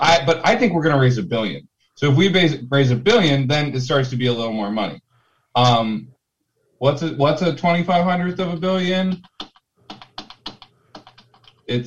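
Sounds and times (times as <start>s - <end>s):
speech: 0.2s - 5.0s, 5.6s - 6.2s, 6.8s - 9.4s, 11.7s - 11.8s
typing on a computer keyboard: 9.1s - 11.7s.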